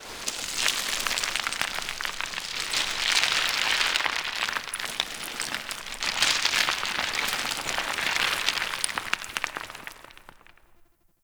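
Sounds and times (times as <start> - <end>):
large rock crumbling: 0.0 - 10.7.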